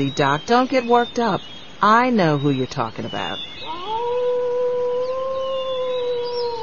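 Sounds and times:
speech: 0.0 - 4.1
soft hiss: 0.0 - 6.6
coyote howling: 3.6 - 6.6.

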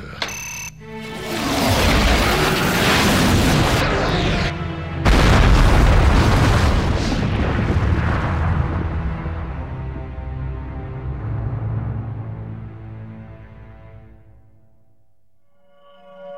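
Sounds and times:
sci-fi particle cannon blast destroying a planet: 1.6 - 4.4, 5.0 - 9.6.

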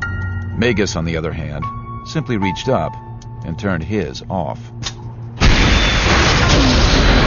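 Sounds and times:
speech: 0.6 - 4.9
122-millimeter artillery gun firing a round: 5.4 - 7.2.

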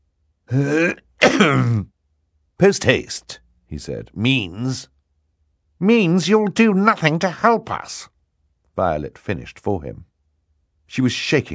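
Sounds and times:
man clearing his throat: 0.5 - 1.9
speech: 0.5 - 1.9, 2.6 - 4.9, 5.8 - 8.1, 8.8 - 10.1, 10.9 - 11.5.

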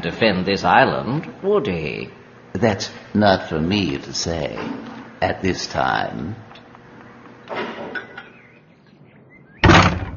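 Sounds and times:
speech: 0.0 - 6.4
door shutting: 4.4 - 5.0, 7.5 - 8.2, 9.6 - 10.1
door opening with a scraping slide: 4.4 - 5.1, 7.4 - 8.3.

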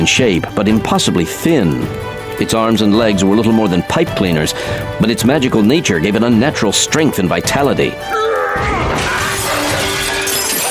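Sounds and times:
speech: 0.0 - 9.1
glass display case shattering: 8.6 - 10.7
tinkling glass shards scattering: 9.0 - 10.7.

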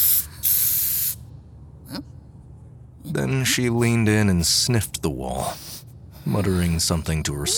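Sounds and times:
metallic silver spray paint hissing from a can onto a wall: 0.0 - 1.2
speech: 1.9 - 2.2, 3.0 - 7.5.

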